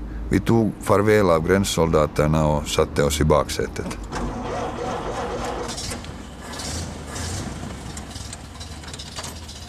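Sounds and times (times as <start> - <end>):
speech: 0.3 - 4.4
taxi engine idling: 4.0 - 9.6.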